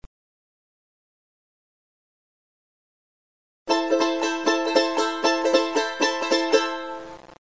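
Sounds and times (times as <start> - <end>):
charango folk music: 3.7 - 7.2.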